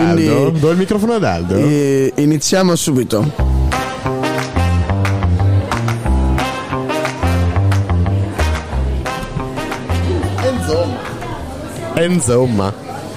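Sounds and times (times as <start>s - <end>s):
speech: 0.2s - 3.8s, 12.0s - 12.9s
upbeat instrumental radio jingle with driving drum beat: 3.3s - 11.0s.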